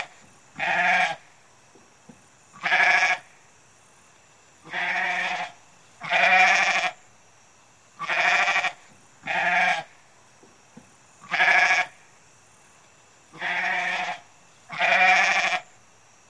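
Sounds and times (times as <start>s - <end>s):
faint high-pitched hum: 0.0s - 16.2s
goat bleating: 2.6s - 3.2s, 4.7s - 7.0s, 8.0s - 9.9s, 11.2s - 11.9s, 13.4s - 15.6s.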